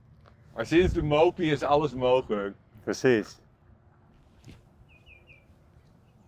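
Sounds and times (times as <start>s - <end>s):
steady low outdoor rumble: 0.0s - 6.2s
speech: 0.6s - 3.4s
common greenshank calling tju-tju-tju: 4.9s - 6.2s.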